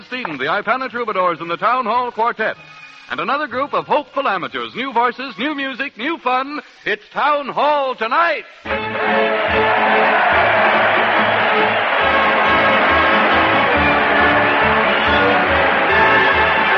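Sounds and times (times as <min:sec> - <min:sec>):
speech: 0:00.1 - 0:09.3
crowd cheering: 0:08.7 - 0:16.7
shouts and whoops: 0:09.0 - 0:16.7.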